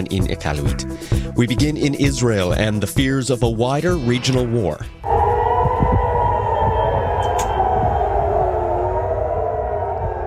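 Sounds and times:
speech: 0:00.0 - 0:05.2
air raid siren wailing: 0:05.0 - 0:10.2.

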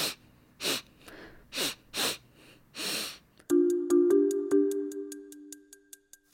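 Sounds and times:
person sniffing: 0:00.0 - 0:03.3
regular ticking: 0:03.5 - 0:06.3.

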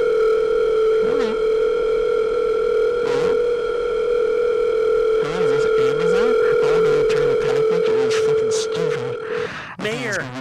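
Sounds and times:
telephone dial tone: 0:00.0 - 0:09.2.

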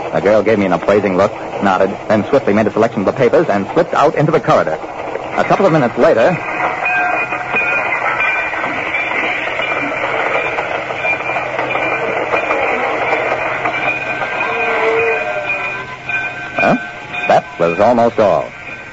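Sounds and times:
moving train clattering along rails: 0:00.0 - 0:18.9
speech: 0:00.1 - 0:06.6, 0:17.6 - 0:18.6
faint high metallic tones: 0:05.3 - 0:18.9.

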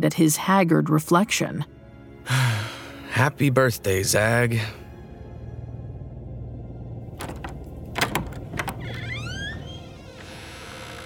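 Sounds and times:
speech: 0:00.0 - 0:02.6, 0:03.2 - 0:04.8
sharp door latch clicks and knocks: 0:07.2 - 0:09.8
bedroom door creaking open at night: 0:07.2 - 0:11.0
thin wavering squeak of door hinges: 0:07.2 - 0:11.0.

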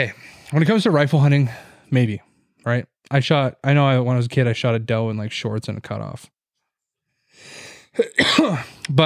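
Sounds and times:
speech: 0:00.0 - 0:06.4, 0:07.4 - 0:09.0
small raspy cough from a scratchy throat: 0:07.9 - 0:08.9.

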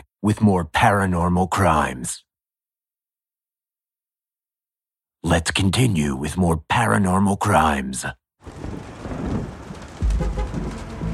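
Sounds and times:
speech: 0:00.2 - 0:02.3, 0:05.2 - 0:08.9
light rain pattering: 0:08.4 - 0:11.1
low rumble: 0:08.5 - 0:11.1.

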